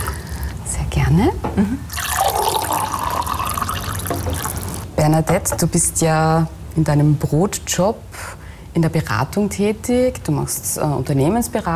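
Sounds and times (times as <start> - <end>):
speech: 1.1 - 2.0, 5.0 - 11.7
water pouring into a glass: 1.9 - 4.9.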